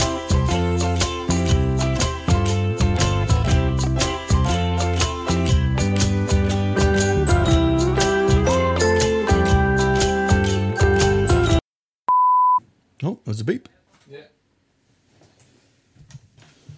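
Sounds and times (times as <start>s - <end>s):
music: 0.0s - 11.6s
recording device low-battery warning beep: 12.1s - 12.6s.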